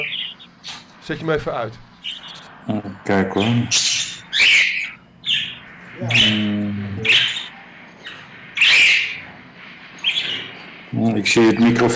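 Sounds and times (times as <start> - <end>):
bird chirping loudly indoors: 0.0 - 0.5, 2.0 - 2.4, 3.4 - 9.3, 10.0 - 10.8
speech: 1.1 - 4.0, 6.0 - 7.2, 10.9 - 11.9.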